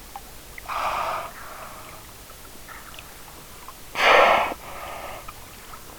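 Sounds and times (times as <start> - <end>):
respiration: 0.7 - 2.0, 4.0 - 5.6.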